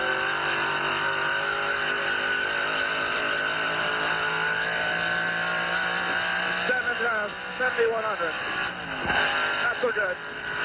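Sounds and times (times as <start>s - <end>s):
race car engine revving at high revs: 0.0s - 10.6s
speech: 7.7s - 10.6s.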